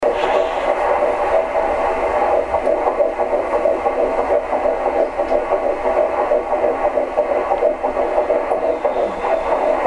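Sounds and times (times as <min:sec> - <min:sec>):
heartbeat: 0:00.0 - 0:09.8.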